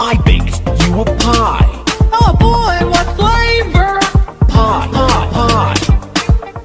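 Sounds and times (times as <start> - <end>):
song: 0.0 - 6.6.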